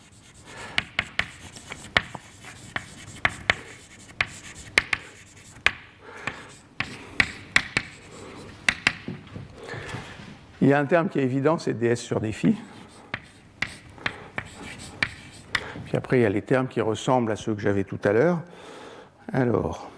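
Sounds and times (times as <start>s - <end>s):
writing out an equation during a physics lecture, taps and scratches: 0.0s - 9.2s, 12.8s - 15.7s
speech: 10.6s - 12.7s, 16.0s - 18.7s, 19.3s - 19.9s.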